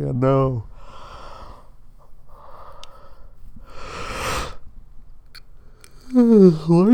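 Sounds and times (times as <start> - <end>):
speech: 0.0 - 0.7, 6.1 - 6.9
person yawning with a slight voiced groan: 6.0 - 6.8.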